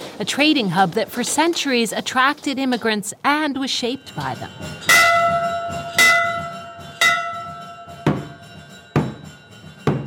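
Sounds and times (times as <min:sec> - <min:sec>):
speech: 0:00.2 - 0:05.0
Taoist temple bells ringing with clear metallic strikes: 0:03.5 - 0:10.0.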